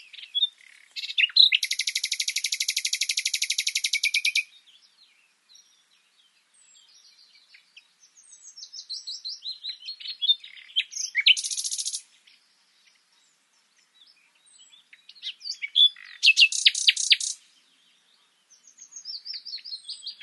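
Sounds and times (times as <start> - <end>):
common nightingale Luscinia megarhynchos song: 0.0 - 20.2.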